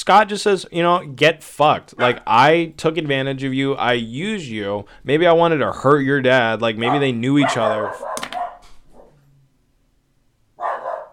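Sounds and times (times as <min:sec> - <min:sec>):
speech: 0:00.0 - 0:08.3
dog barking: 0:02.0 - 0:02.3, 0:06.8 - 0:09.2, 0:10.6 - 0:11.1.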